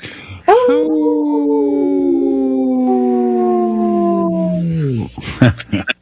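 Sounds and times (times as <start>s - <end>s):
wolf howling: 0.5s - 5.1s.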